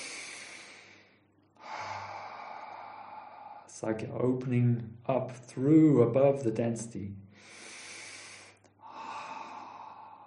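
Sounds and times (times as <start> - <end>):
slow deep breathing during a guided chakra meditation: 0.0 - 3.9, 7.3 - 10.2
speech: 3.8 - 7.2.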